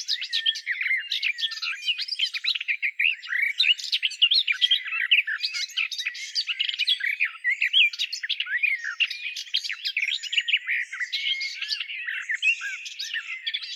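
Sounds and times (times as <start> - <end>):
Garden warbler song: 0.0 - 13.7.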